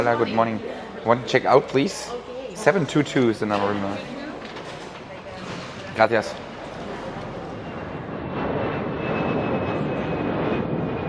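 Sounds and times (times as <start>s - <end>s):
speech: 0.0s - 4.2s, 6.0s - 6.4s
airplane engine roar after landing: 4.4s - 11.0s.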